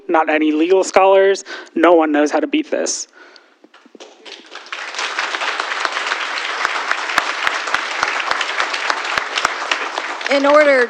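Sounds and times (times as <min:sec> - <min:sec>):
speech: 0:00.1 - 0:03.4, 0:10.3 - 0:10.8
sharp loud claps near the front: 0:03.7 - 0:10.8
audience applause at a township meeting: 0:04.0 - 0:10.8.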